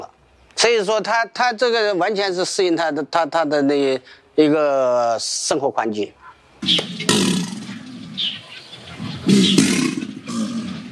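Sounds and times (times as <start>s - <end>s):
speech: 0.6s - 7.3s
faint bird chirps: 6.1s - 10.9s
released Chinese alligators bellowing in hot muggy weather: 6.6s - 10.9s.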